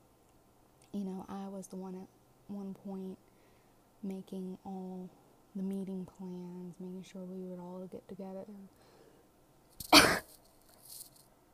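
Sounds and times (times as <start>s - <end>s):
speech: 1.0s - 3.3s, 4.0s - 8.9s
person coughing with a peanut chocolate candy stuck in the throat: 9.8s - 10.3s.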